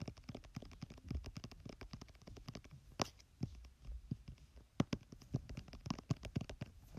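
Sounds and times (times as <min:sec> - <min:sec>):
gentle tapping on a hairbrush: 0:00.0 - 0:06.8.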